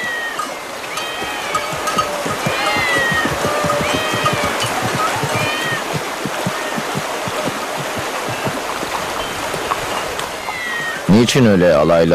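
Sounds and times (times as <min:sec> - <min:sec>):
numerous cats meowing at once in a city temple: 0:00.0 - 0:07.0, 0:10.3 - 0:11.1
steady watery rush: 0:00.0 - 0:12.1
speech: 0:11.2 - 0:12.1.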